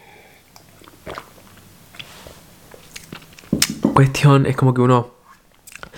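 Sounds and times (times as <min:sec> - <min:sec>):
person sipping from a glass: 0:00.6 - 0:02.4
speech: 0:04.0 - 0:05.1.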